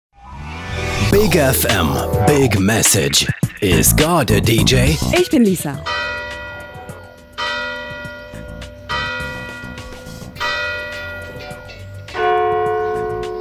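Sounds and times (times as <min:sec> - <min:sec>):
speech: 0:01.1 - 0:06.2
church bells pealing from a tower: 0:05.8 - 0:13.3.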